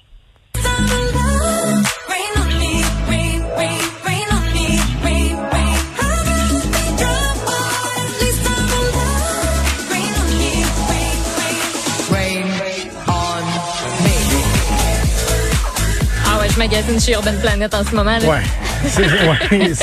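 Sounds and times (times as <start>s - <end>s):
upbeat dance-pop song with driving beat, synths and pounding bass: 0.6s - 19.8s
speech: 16.6s - 19.8s
laughter: 18.3s - 19.8s.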